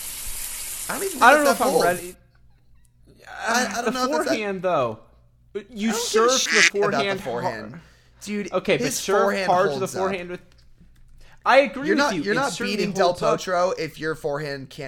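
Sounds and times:
speech: 0.9 - 2.2, 3.1 - 10.5, 11.4 - 14.8
laughter: 3.4 - 4.4, 5.8 - 7.8
strained wavering voice-like tones: 5.9 - 7.6
frying sizzle sound effect: 6.4 - 6.8.

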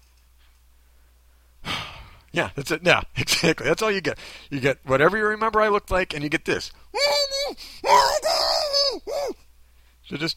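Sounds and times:
speech: 2.3 - 8.3, 10.1 - 10.3
man letting out loud strained screams: 7.0 - 9.4.

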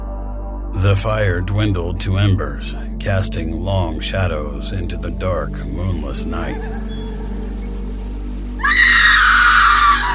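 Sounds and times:
speech: 0.8 - 6.9
woman's terrified high-pitched scream at a campsite: 8.6 - 10.1.

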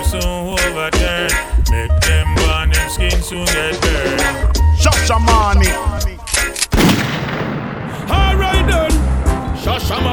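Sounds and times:
speech: 0.1 - 2.0, 3.0 - 6.1
gunshot sound effect: 6.7 - 10.0.

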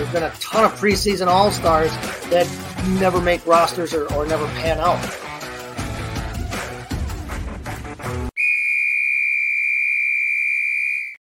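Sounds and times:
upbeat music: 0.0 - 8.3
speech: 0.1 - 5.2
loud piercing whistle blast: 8.4 - 11.2.

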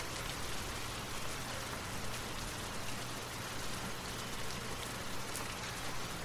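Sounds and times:
rain pattering on a hard surface: 0.0 - 6.2.

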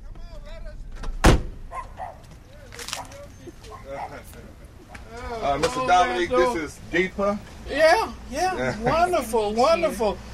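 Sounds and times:
indistinct voices talking: 0.0 - 10.3
car door shutting: 0.9 - 2.0
speech: 5.5 - 10.3
laughter: 8.4 - 9.9.

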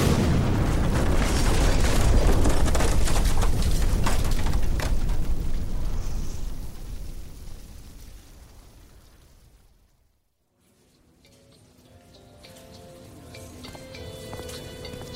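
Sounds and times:
house exploding: 0.0 - 10.1.

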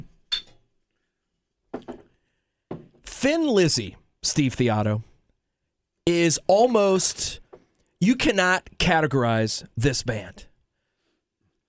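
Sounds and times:
beer glasses clinking in a toast: 0.3 - 0.6
speech: 3.2 - 5.1, 6.2 - 7.4, 8.0 - 10.5.

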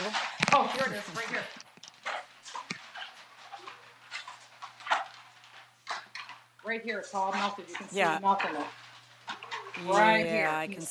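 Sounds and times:
dogs panting: 0.0 - 10.4
dogs whimpering with short breathy whines: 2.0 - 5.2, 9.3 - 10.5
speech: 6.7 - 8.8, 9.8 - 10.8.

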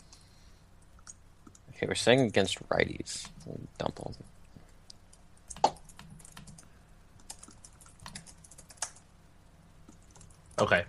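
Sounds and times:
speech: 1.8 - 4.4, 10.6 - 10.8
typing on a computer keyboard: 5.1 - 9.0, 9.9 - 10.6.

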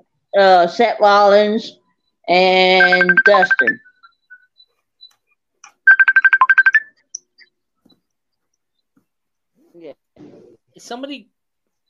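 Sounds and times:
speech: 0.4 - 3.8, 9.8 - 11.3
phone ringtone from an incoming Facebook call: 2.4 - 4.5, 5.7 - 7.2.

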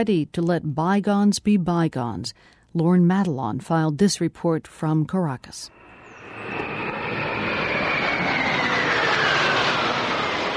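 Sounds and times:
speech: 0.0 - 5.8
Russian-made jet fighters flying in formation overhead: 5.7 - 10.5
faint descending whine of jet fighters: 5.7 - 10.5.

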